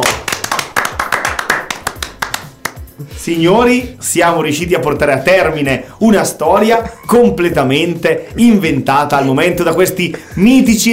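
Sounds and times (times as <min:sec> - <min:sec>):
small group applauding: 0:00.0 - 0:03.0
speech: 0:03.2 - 0:10.9.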